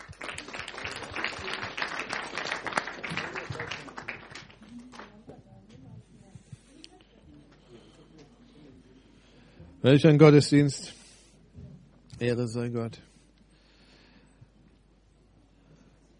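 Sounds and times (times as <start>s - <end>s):
crowd applauding: 0.0s - 5.2s
speech: 9.8s - 11.0s, 12.2s - 13.1s.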